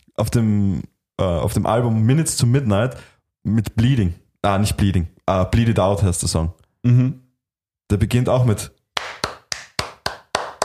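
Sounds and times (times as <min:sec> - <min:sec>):
speech: 0:00.2 - 0:07.2, 0:07.9 - 0:08.8
sharp rhythmic hand claps with slight room ring: 0:09.0 - 0:10.6.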